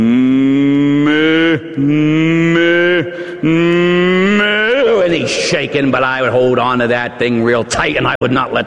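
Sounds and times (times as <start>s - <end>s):
human voice imitating a fidgeting bull calf mooing: 0.0s - 5.0s
speech: 5.3s - 8.6s.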